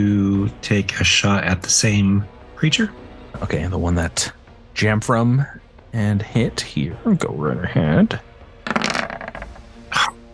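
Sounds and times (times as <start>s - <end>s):
speech: 0.0s - 8.3s
dice rolling on a hard tabletop: 8.7s - 9.7s.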